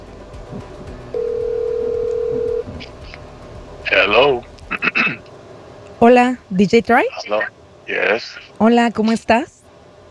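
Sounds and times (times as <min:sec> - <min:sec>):
telephone ring-back tone: 0:01.2 - 0:02.6
speech: 0:06.0 - 0:09.6.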